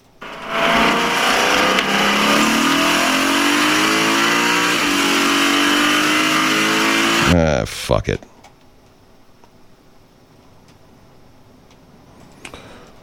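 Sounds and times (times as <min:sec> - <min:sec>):
racing car engine revving heard from inside the vehicle: 0:00.0 - 0:07.6
speech: 0:08.0 - 0:08.3.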